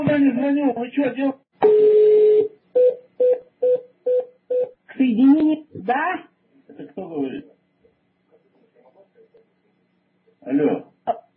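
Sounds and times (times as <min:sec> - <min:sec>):
speech: 0:00.2 - 0:01.8, 0:05.1 - 0:06.3, 0:07.0 - 0:07.5, 0:10.4 - 0:11.2
telephone line dialing tones: 0:01.6 - 0:04.7.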